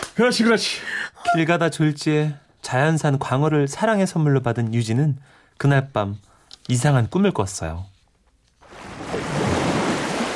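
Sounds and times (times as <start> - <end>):
speech: 0.2 - 7.9
ocean waves breaking on a beach: 8.6 - 10.3.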